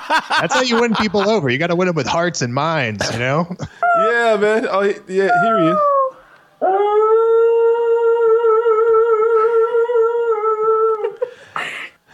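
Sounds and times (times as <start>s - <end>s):
laughter: 0.0s - 1.5s
speech: 0.1s - 5.9s
dog howling: 5.4s - 11.2s.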